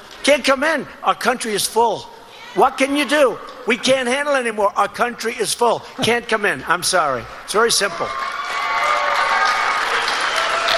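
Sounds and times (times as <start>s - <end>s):
speech: 0.2s - 8.3s
audience applauding at a political coalition event: 7.5s - 10.7s.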